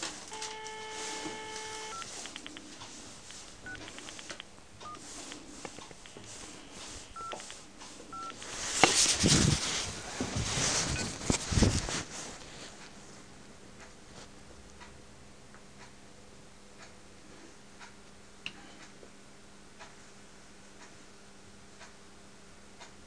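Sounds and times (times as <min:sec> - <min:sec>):
rustling and handling noise: 0:00.0 - 0:13.3
telephone keypad tones dialing a number: 0:00.3 - 0:02.7, 0:03.6 - 0:05.0, 0:07.2 - 0:08.4.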